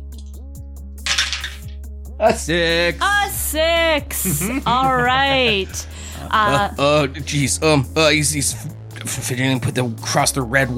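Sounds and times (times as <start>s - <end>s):
dice including a six-sided D6 tumbling across a hard tabletop: 1.1s - 1.7s
speech: 2.2s - 10.7s
laughter: 4.1s - 6.7s.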